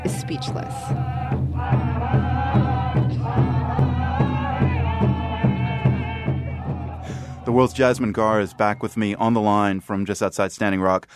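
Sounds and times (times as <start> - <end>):
large crowd at Standing Rock roaring and chanting together: 0.0 - 8.9
speech: 0.1 - 2.2, 7.5 - 11.1.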